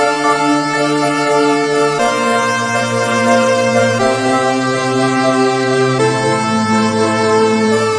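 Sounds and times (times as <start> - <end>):
trance lead synth electronic loop: 0.0 - 7.9.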